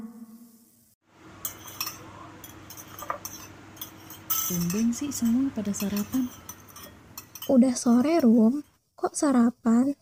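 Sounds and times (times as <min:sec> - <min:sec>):
plates, glasses and spoons clinking during table setting: 0:01.4 - 0:08.3
speech: 0:04.5 - 0:06.4, 0:07.5 - 0:10.0.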